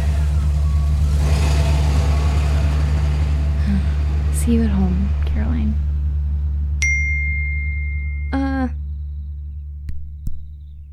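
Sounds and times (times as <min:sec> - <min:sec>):
steady low hum: 0:00.0 - 0:10.9
speech: 0:04.5 - 0:05.2
wind chimes ringing: 0:06.8 - 0:08.4.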